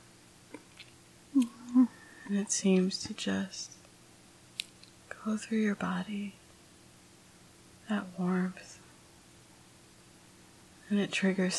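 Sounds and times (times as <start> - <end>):
lip clicks: 0.5 - 1.8
speech: 2.3 - 3.8, 5.2 - 6.4, 7.9 - 8.8, 10.9 - 11.5.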